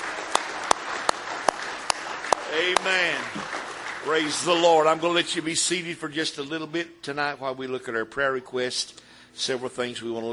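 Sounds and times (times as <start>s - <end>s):
crowd clapping as praise at a church service: 0.0s - 5.5s
speech: 2.6s - 10.3s.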